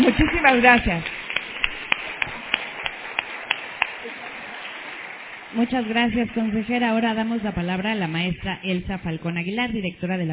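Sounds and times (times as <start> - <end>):
small audience applauding: 0.0 - 8.2
speech: 0.4 - 1.1, 5.5 - 10.3.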